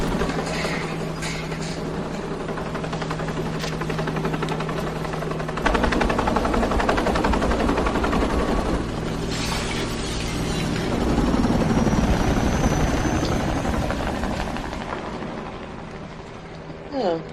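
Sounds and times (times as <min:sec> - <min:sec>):
helicopter with thumping rotor noise and engine whine flying overhead: 0:00.0 - 0:17.3
brief rising whistle-like sound: 0:11.5 - 0:13.8.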